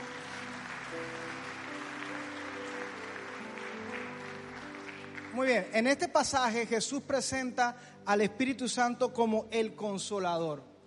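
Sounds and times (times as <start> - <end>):
church audience clapping: 0.0 - 6.1
speech: 5.4 - 10.7.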